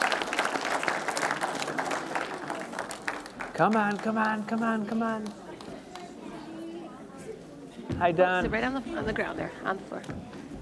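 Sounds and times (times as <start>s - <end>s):
crowd applause: 0.0s - 6.1s
speech: 3.6s - 5.4s, 8.0s - 10.3s.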